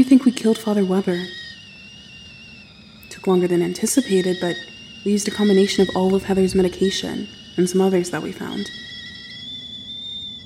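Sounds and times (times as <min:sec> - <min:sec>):
speech: 0:00.0 - 0:01.4, 0:03.2 - 0:08.9
tin kettle whistling on a pot-bellied stove: 0:00.0 - 0:10.4
faint low rumble: 0:05.7 - 0:07.2.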